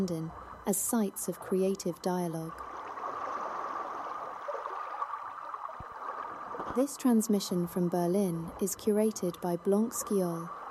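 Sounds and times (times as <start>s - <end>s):
speech: 0.0s - 2.7s, 6.8s - 10.6s
river water flowing: 2.5s - 6.9s.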